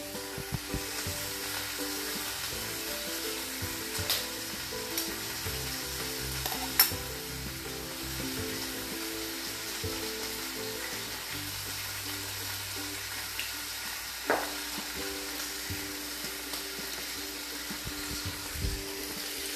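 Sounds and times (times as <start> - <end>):
egg with a soft yolk frying in a pan: 0.0 - 19.5.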